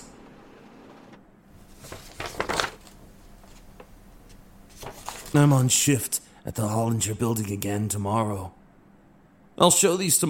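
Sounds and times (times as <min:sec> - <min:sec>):
printer printing photos on glossy photo paper: 0:00.0 - 0:02.8
speech: 0:05.4 - 0:08.6, 0:09.6 - 0:10.2.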